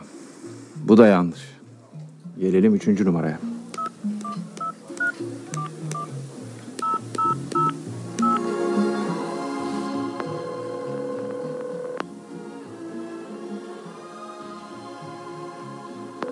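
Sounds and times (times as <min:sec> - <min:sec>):
faint murmur: 0:00.0 - 0:10.3
speech: 0:00.9 - 0:01.6, 0:02.4 - 0:03.5
crisp short telephone keypad tones: 0:03.8 - 0:06.1, 0:06.8 - 0:08.4, 0:10.3 - 0:12.0
steady telephone ringing tone on the line: 0:06.8 - 0:08.4, 0:10.2 - 0:12.0.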